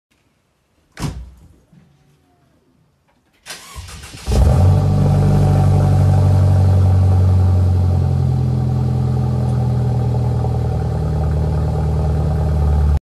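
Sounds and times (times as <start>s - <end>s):
Mercedes-Benz C200 car: 3.7s - 13.0s.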